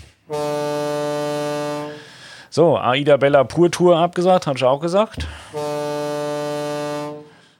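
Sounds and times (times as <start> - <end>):
loud deep ship horn blast: 0.0 - 2.3, 5.4 - 7.5
speech: 2.6 - 5.6.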